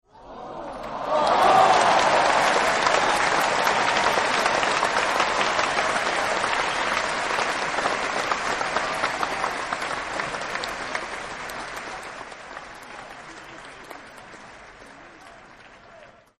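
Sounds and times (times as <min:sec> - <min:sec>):
crowd applause: 0:00.1 - 0:16.3.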